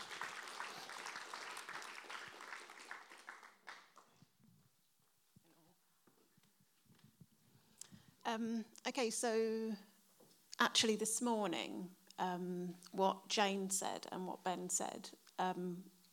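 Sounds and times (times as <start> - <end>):
audience applause: 0.0 - 4.2
soft room noise: 0.0 - 16.1
speech: 8.3 - 9.9, 10.6 - 15.9.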